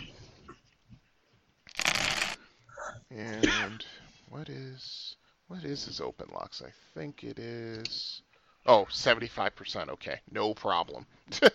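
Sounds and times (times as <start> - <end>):
dice rattling and clattering: 1.7 - 2.4
speech: 3.1 - 11.5.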